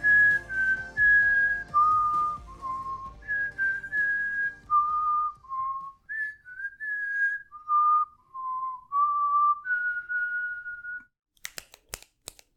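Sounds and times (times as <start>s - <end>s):
person whistling a film theme tune: 0.0s - 11.1s
sharp clicks: 11.4s - 12.5s.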